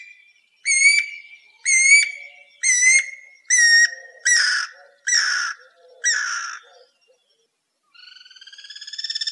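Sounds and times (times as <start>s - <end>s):
guira cuckoo singing: 0.7s - 7.4s.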